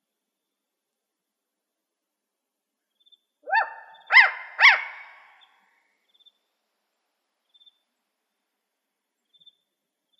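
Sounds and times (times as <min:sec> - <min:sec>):
spotted owl barking in Arizona: 0:03.4 - 0:05.4.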